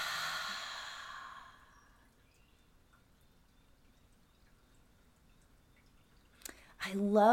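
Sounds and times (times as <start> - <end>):
person breathing out deeply during a guided breathing exercise: 0.0 - 1.9.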